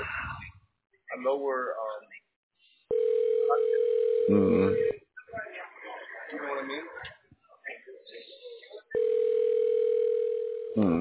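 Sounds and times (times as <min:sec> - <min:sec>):
speech: 0:01.2 - 0:02.1, 0:04.3 - 0:05.0
telephone dial tone while automatically dialing: 0:02.9 - 0:04.3, 0:09.0 - 0:10.8.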